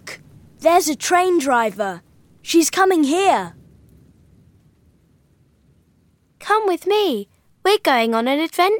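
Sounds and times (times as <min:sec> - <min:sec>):
faint continuous low rumble of thunder: 0:00.0 - 0:08.3
steady hiss of rainfall: 0:00.0 - 0:08.7
speech: 0:00.6 - 0:03.6, 0:06.5 - 0:08.7.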